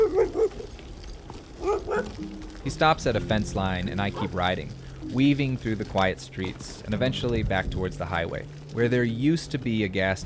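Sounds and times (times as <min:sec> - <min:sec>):
dog barking outdoors while chasing: 0:00.0 - 0:00.7, 0:01.6 - 0:02.2, 0:04.2 - 0:04.4
low steady rumble of wind or road noise: 0:00.0 - 0:10.2
speech: 0:02.6 - 0:10.2.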